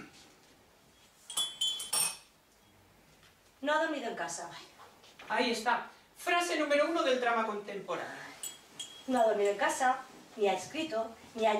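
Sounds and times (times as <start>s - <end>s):
teaspoon clinking against a cup while stirring decaf coffee: 1.3s - 2.3s, 8.4s - 9.6s
speech: 3.6s - 4.7s, 5.3s - 8.2s, 9.1s - 11.5s.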